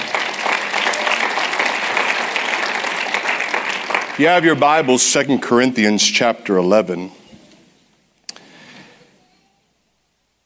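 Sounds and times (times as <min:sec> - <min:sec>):
large conference audience applause: 0:00.0 - 0:05.0
speech: 0:04.2 - 0:07.2.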